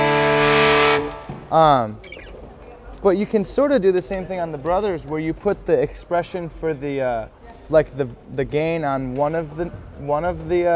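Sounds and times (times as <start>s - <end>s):
buzzy distorted guitar amp tone: 0.0s - 2.3s
speech: 1.5s - 2.1s, 3.0s - 10.7s.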